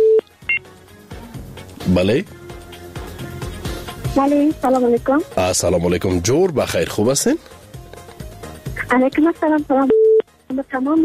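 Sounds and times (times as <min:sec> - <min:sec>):
speech: 0:01.9 - 0:02.4, 0:04.2 - 0:07.5, 0:08.9 - 0:10.0, 0:10.6 - 0:11.0
short telephone beeps as a caller's line is connected: 0:09.9 - 0:10.2.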